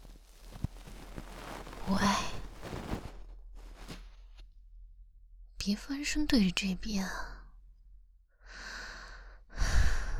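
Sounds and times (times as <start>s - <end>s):
speech: 1.9s - 2.3s, 5.7s - 7.3s
person in bed breathing heavily: 8.4s - 10.1s.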